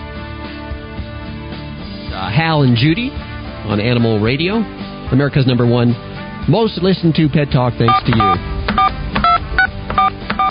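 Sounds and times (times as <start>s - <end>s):
speech: 2.2s - 9.0s
telephone keypad tones over a phone line: 7.9s - 10.4s.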